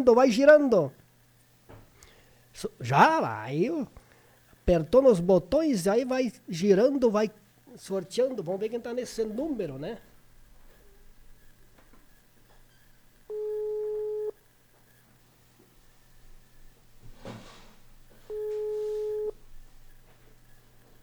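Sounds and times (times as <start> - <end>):
speech: 0.0 - 1.0, 2.6 - 4.0, 4.7 - 10.1
outgoing phone call ringback tone: 13.3 - 14.4, 18.3 - 19.4.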